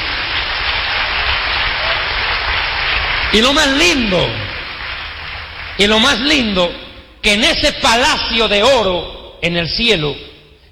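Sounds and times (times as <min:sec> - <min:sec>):
church congregation applause: 0:00.0 - 0:07.0
speech: 0:03.3 - 0:04.5, 0:05.8 - 0:10.3.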